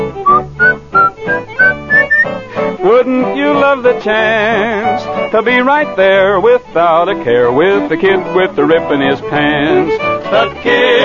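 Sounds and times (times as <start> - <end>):
person whistling a cheerful tune: 0.2 - 2.7
speech: 3.8 - 11.0.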